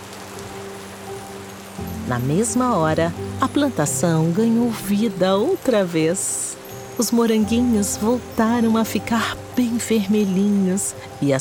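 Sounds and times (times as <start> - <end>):
heavy rain: 0.0 - 11.4
speech: 2.1 - 11.4.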